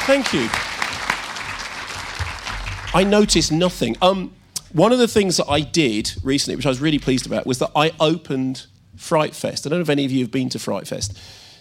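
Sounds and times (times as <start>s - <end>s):
crowd clapping steadily: 0.0s - 3.6s
speech: 0.1s - 0.7s, 2.9s - 11.4s.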